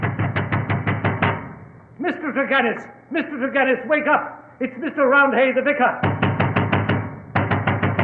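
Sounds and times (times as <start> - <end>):
loud knocking on a door: 0.0 - 1.5, 6.0 - 8.0
speech: 2.3 - 6.1.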